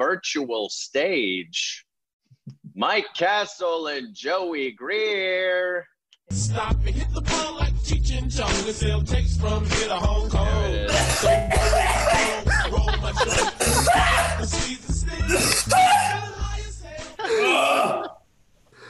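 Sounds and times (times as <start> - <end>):
speech: 0.0 - 1.9, 2.8 - 16.3, 17.2 - 18.1
person groaning: 10.8 - 12.6, 13.5 - 14.5, 15.3 - 16.3, 17.2 - 18.2
throat clearing: 10.9 - 12.4
loud harsh coughing: 10.9 - 14.5, 15.3 - 16.2
person chuckling: 10.9 - 14.6, 17.2 - 18.2.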